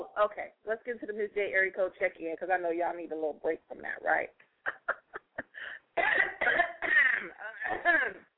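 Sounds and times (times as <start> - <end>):
speech: 0.2 - 4.5, 7.2 - 8.3
person clearing throat: 6.0 - 8.3.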